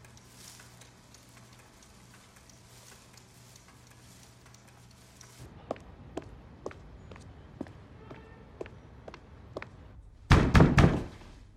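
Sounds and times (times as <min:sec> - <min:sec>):
quiet footsteps: 0:00.0 - 0:10.0
loud heavy knocks on a door: 0:10.3 - 0:11.2.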